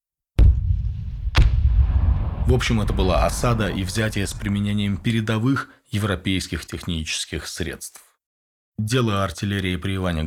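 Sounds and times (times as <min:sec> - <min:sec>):
explosions collapsing fortress walls: 0:00.4 - 0:05.3
heavy rumbling roar of collapsing fortress walls: 0:01.7 - 0:05.2
speech: 0:02.4 - 0:08.0, 0:08.8 - 0:10.2.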